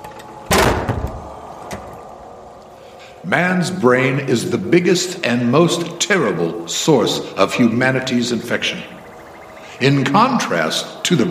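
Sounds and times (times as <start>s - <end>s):
faint hiss: 0.0s - 11.2s
door swung shut with a rattling settle: 0.5s - 1.3s
speech: 3.2s - 9.0s, 9.8s - 11.2s.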